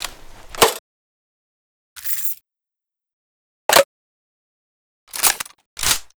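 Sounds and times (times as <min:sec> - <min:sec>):
MG42 machine gun reloading: 0:05.1 - 0:06.1.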